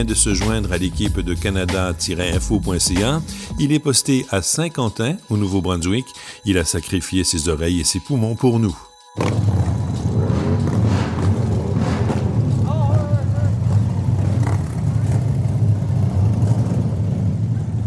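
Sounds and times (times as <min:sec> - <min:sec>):
speech: 0:00.0 - 0:09.8
motorcycle engines rumbling and revving at a motorcycle festival in Kedgwick: 0:09.2 - 0:17.8.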